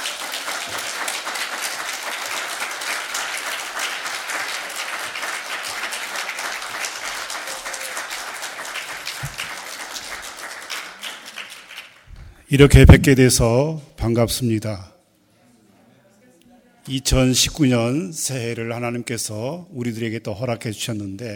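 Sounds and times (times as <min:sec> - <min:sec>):
large audience applauding to welcome a pastor: 0:00.0 - 0:12.1
speech: 0:12.5 - 0:15.0, 0:16.9 - 0:21.3.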